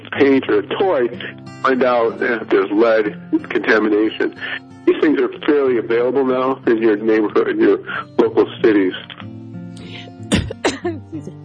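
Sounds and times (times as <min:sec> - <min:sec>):
speech: 0:00.2 - 0:09.2
person coughing after choking on a breath: 0:09.9 - 0:11.1.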